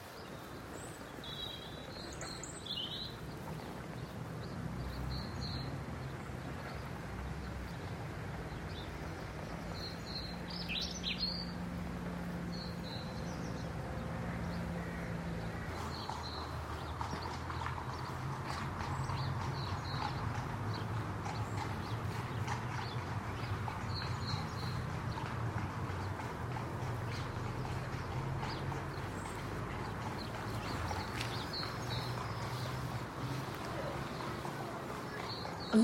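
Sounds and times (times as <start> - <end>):
birds chirping and tweeting: 0.0 - 35.8
horse's hooves clip-clopping at a walk: 0.0 - 35.8.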